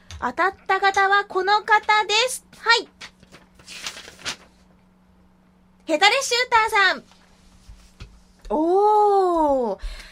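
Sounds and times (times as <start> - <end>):
speech: 0.2 - 3.0, 5.9 - 7.1, 8.5 - 10.0
folded paper letter rustling and crinkling as it is drawn out and opened: 3.0 - 4.7.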